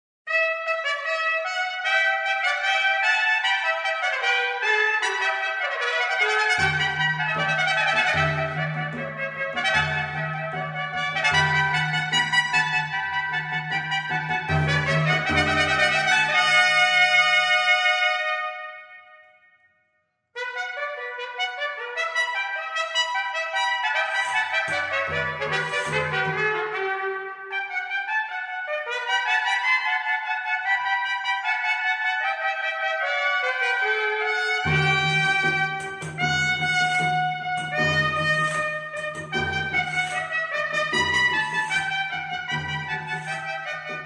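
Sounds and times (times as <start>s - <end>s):
trumpet: 0.3s - 19.6s, 20.4s - 44.0s.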